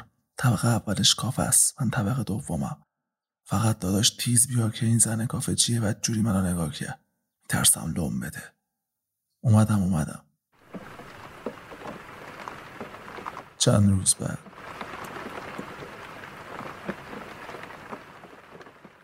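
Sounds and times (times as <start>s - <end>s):
speech: 0.4s - 2.9s, 3.5s - 8.6s, 9.4s - 10.3s, 13.6s - 14.5s
rain pattering on the window glass of a cell: 10.6s - 19.0s.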